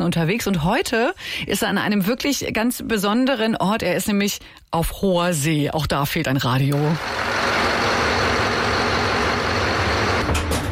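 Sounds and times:
speech: 0.0 - 7.6
ship's bow thruster motor running: 7.0 - 10.4.

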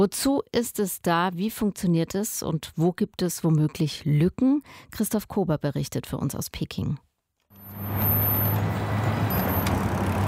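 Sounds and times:
speech: 0.0 - 7.1
dense traffic at busy eight-lane city intersection: 7.5 - 10.2.

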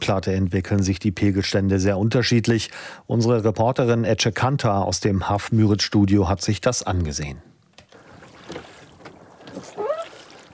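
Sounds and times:
speech: 0.1 - 7.5
rowing boat oars splashing through weedy water: 7.9 - 10.5.

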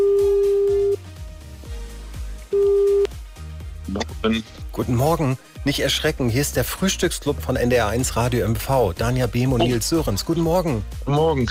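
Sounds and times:
electronic ringback tone of outgoing radio show call: 0.0 - 1.0, 2.5 - 3.1
rhythmic music: 1.1 - 11.4
speech: 4.2 - 11.4.

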